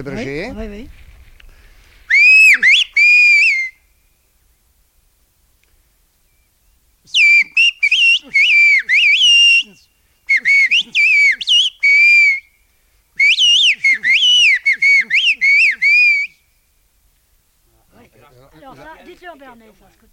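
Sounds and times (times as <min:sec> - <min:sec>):
speech: 0:00.0 - 0:01.1, 0:19.6 - 0:20.1
person whistling a phrase in a whistled language: 0:02.1 - 0:03.8, 0:07.1 - 0:12.4, 0:13.2 - 0:16.4.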